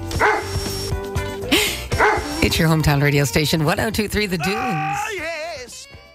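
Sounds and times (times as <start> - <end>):
dog barking: 0.2 - 0.7, 1.9 - 2.4
speech: 2.5 - 5.4.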